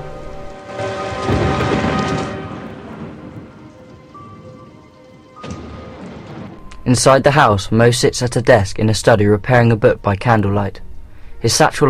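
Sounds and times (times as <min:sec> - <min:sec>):
heavy rain: 0:00.0 - 0:06.8
deep roll of thunder rumbling: 0:00.0 - 0:07.7
speech: 0:06.9 - 0:10.8, 0:11.4 - 0:11.8.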